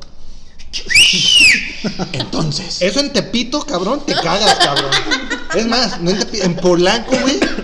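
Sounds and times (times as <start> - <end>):
person whistling eerie horror-style tune: 0.8 - 1.9
speech: 0.8 - 7.6
laughter: 1.2 - 2.4, 4.1 - 7.6.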